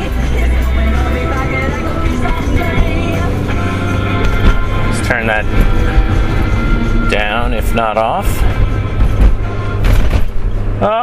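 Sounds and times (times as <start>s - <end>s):
Mini car engine and road rumble driving over bumpy roads: 0.0s - 11.0s
speech: 7.7s - 8.5s, 10.8s - 11.0s.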